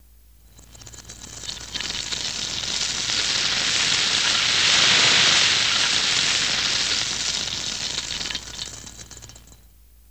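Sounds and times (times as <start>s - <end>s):
reversed electric sizzle loop for cooking: 1.4s - 9.4s.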